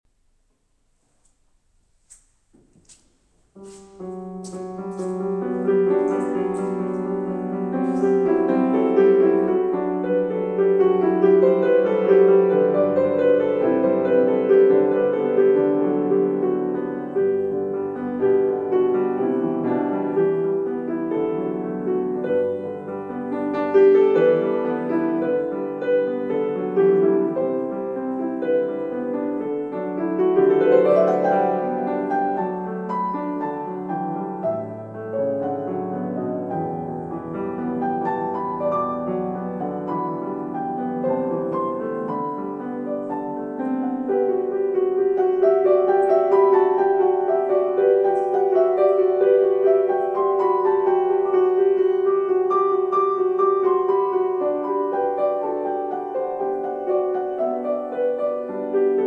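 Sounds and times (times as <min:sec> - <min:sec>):
piano improvisation: 0:00.1 - 0:59.0.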